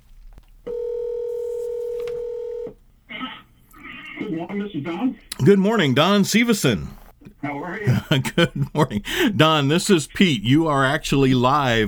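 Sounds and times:
electronic ringback tone of an outgoing phone call: 0.7 - 2.8
speech: 4.2 - 11.8
laughter: 7.4 - 11.8.

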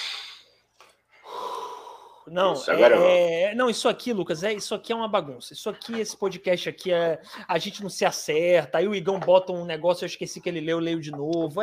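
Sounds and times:
person breathing in and out deeply: 1.2 - 2.3
speech: 2.3 - 11.6.

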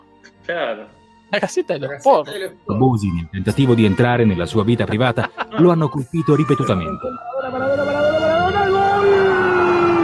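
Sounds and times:
speech: 0.5 - 8.2
laughter: 4.9 - 6.4
goal siren wailing: 6.2 - 10.0.

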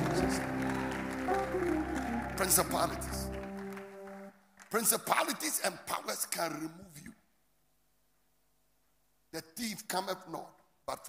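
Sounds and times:
audience shouting and cheering during a sermon: 0.0 - 4.0
audience clapping during a sermon: 0.0 - 5.5
speech: 2.4 - 3.1, 4.7 - 7.2, 9.3 - 11.0.

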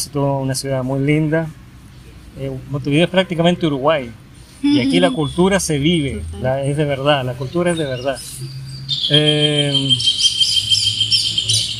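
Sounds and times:
speech: 0.0 - 1.6, 2.4 - 10.2
low steady hum: 4.5 - 6.8
birds chirping and trilling outdoors: 7.0 - 11.7.

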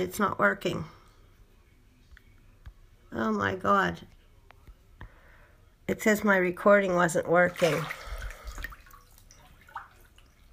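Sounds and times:
speech: 0.0 - 1.0, 3.1 - 4.2, 5.9 - 8.0
water splashing in a bathtub as someone leans up: 6.7 - 10.5.

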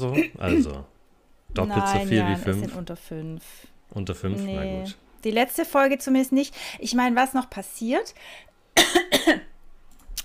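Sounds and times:
person coughing harshly: 0.0 - 0.8, 8.8 - 9.5
speech: 0.0 - 0.9, 1.5 - 9.5.

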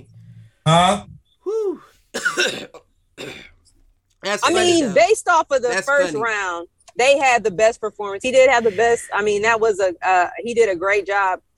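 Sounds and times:
speech: 0.7 - 1.1, 4.2 - 11.5
person coughing harshly after hitting a vape: 2.1 - 3.6.

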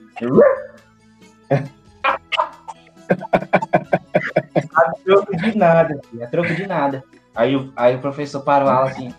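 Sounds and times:
person imitating a dog barking in a classroom: 0.0 - 0.8, 1.5 - 5.0
speech: 0.2 - 0.8, 1.5 - 1.8, 4.8 - 9.1
laughter: 1.5 - 6.7.

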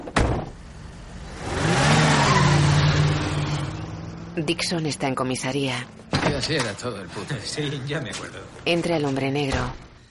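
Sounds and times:
car engine starting and revving: 0.5 - 6.5
speech: 4.4 - 9.9.

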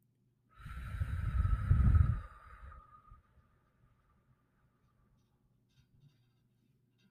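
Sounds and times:
person breathing in through the nose and exhaling through the mouth: 0.5 - 3.9.

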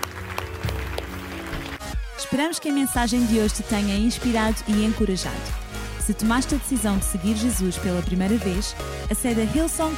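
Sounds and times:
audience applauding at a church service: 0.0 - 2.0
speech: 2.2 - 9.9.

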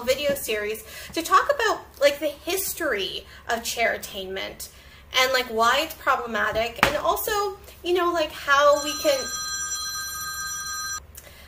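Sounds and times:
speech: 0.0 - 9.4
telephone ringing with an electronic trill: 8.7 - 11.0.

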